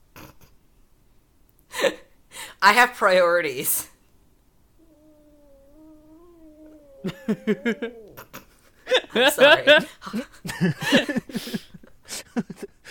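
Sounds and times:
speech: 2.6s - 3.9s, 7.3s - 8.0s, 9.2s - 11.6s
cat yowling in protest: 4.8s - 8.2s
people laughing: 7.1s - 12.8s
people chattering: 9.1s - 9.9s.

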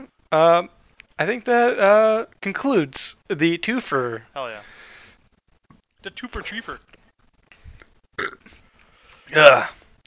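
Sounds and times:
speech: 0.3s - 4.7s, 6.0s - 6.9s, 9.3s - 9.8s
loud burp: 8.2s - 8.6s.

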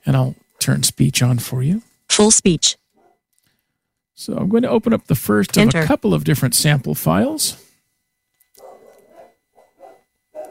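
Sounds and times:
speech: 0.0s - 2.8s, 4.2s - 7.6s
several dogs barking and yelping: 2.9s - 3.2s, 8.6s - 10.4s.

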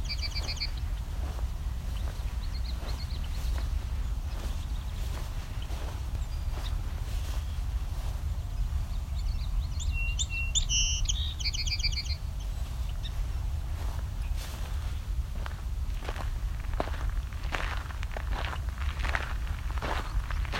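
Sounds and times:
song sparrow singing: 0.0s - 15.1s
steady low rumble: 0.0s - 20.5s.

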